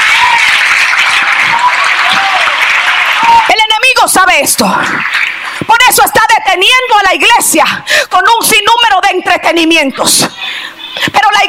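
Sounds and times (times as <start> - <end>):
large crowd applauding loudly: 0.0 - 5.9
speech: 4.0 - 11.4.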